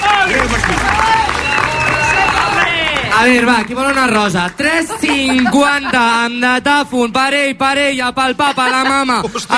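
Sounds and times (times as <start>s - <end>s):
cheering: 0.0s - 4.2s
crowd applauding: 0.0s - 6.0s
speech: 3.2s - 9.5s
laughter: 4.5s - 6.5s, 8.3s - 9.5s.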